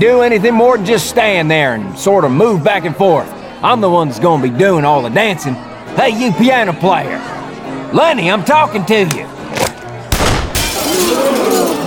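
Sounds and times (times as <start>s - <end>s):
speech: 0.0s - 9.3s
bullet smashing a glass bowl on a piano: 10.2s - 11.8s.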